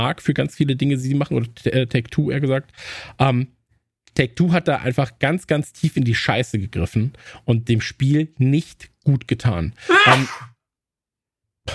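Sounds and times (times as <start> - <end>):
speech: 0.0 - 3.6, 4.2 - 10.5
loud sneeze: 9.9 - 10.6.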